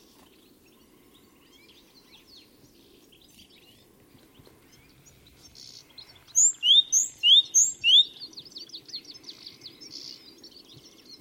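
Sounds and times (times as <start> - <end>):
great tit calling: 4.9 - 11.2.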